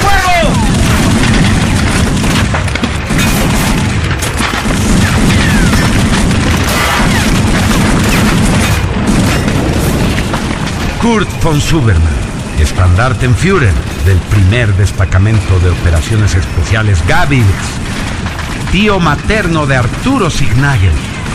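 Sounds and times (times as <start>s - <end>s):
Schmeisser submachine gun fire in a battle scene: 0.0s - 11.0s
heavy booms in a battle scene: 0.4s - 20.2s
speech: 11.1s - 12.2s, 12.8s - 17.8s, 18.7s - 21.1s.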